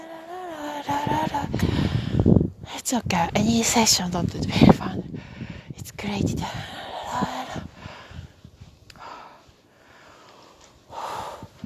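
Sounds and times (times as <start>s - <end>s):
heavy breathing: 0.0s - 2.4s, 5.1s - 5.8s, 6.5s - 11.6s
speech: 2.9s - 5.0s, 6.0s - 7.3s.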